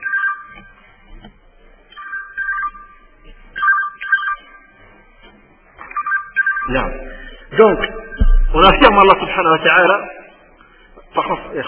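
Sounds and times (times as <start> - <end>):
mobile phone ringing with an electronic melody: 0.0 - 0.6, 2.0 - 3.0, 3.6 - 4.7, 5.8 - 6.9
speech: 6.7 - 7.0, 7.6 - 8.0, 8.6 - 10.2, 11.2 - 11.6.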